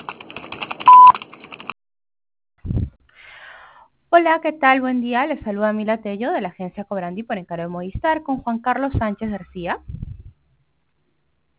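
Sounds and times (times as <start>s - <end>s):
choppy electronic telephone tones on a call: 0.9s - 1.2s
loud steady telephone beep: 0.9s - 1.2s
speech: 4.2s - 10.0s.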